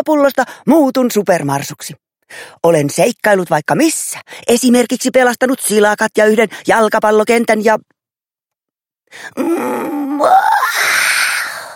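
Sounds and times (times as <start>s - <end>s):
speech: 0.0s - 8.0s, 9.1s - 11.0s
voice imitating a dog's wide-mouthed yawn: 9.4s - 11.6s.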